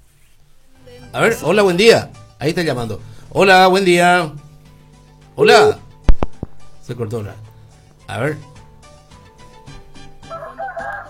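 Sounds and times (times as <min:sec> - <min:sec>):
speech: 0:01.1 - 0:04.4, 0:05.4 - 0:05.8, 0:06.9 - 0:07.5, 0:08.1 - 0:08.5
rooster crowing: 0:10.2 - 0:11.0.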